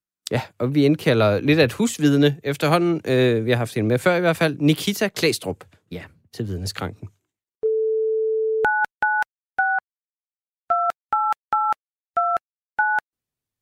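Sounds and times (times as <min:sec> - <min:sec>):
speech: 0:00.3 - 0:07.2
phone dial tone: 0:07.6 - 0:09.8
two-pitched phone keypad beeps: 0:08.5 - 0:09.8, 0:10.7 - 0:13.0.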